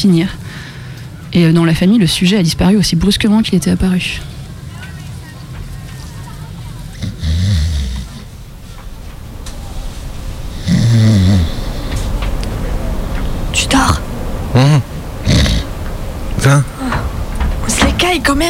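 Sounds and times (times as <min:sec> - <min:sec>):
speech: 0:00.0 - 0:00.4, 0:01.3 - 0:04.3
several people snoring: 0:06.9 - 0:17.4.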